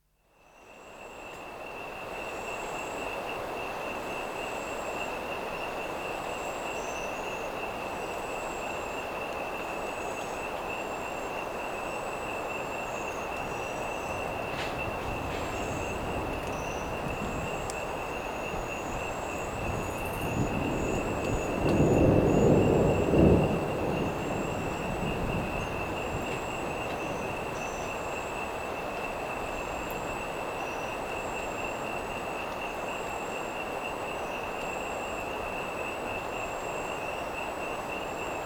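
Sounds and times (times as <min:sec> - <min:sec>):
crickets chirping: 0:00.4 - 0:38.4
frogs croaking: 0:00.6 - 0:38.4
storm approaching a marsh: 0:12.4 - 0:32.0.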